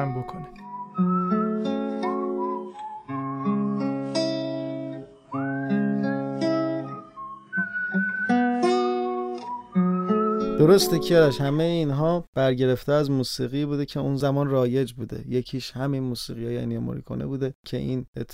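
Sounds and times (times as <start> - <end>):
speech: 0.0 - 1.3, 10.6 - 18.3
bright whistled melody in a song: 0.2 - 11.8
steady musical accompaniment: 0.3 - 11.7.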